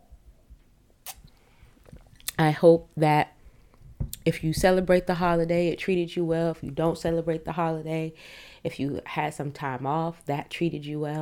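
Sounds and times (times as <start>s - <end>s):
person sipping eggnog: 1.0s - 2.4s
faint low mouth and swallowing sounds: 1.1s - 2.4s
speech: 2.4s - 3.4s, 4.2s - 11.2s.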